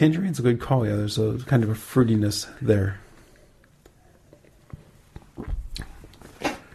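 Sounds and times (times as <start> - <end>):
speech: 0.0 - 3.0
person sipping beer from a glass: 4.3 - 6.5.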